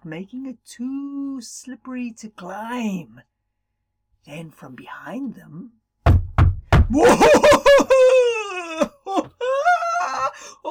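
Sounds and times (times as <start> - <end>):
speech: 0.1 - 3.3, 4.2 - 5.8, 6.9 - 10.6
hollow knocking: 6.1 - 7.3
laughter: 7.0 - 8.9.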